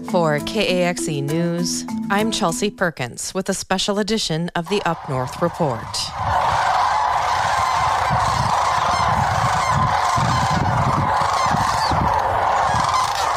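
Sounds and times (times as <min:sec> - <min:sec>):
speech: 0:00.1 - 0:06.3
sandhill cranes giving flight calls during southward migration: 0:04.7 - 0:13.3.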